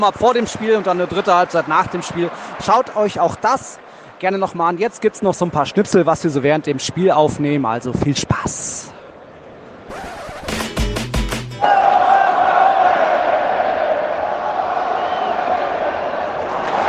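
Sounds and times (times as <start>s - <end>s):
speech: 0.0s - 8.9s
rhythmic clapping or drumbeats: 10.0s - 11.6s
Swedish stadium crowd roaring, cheering and chanting: 11.6s - 16.7s.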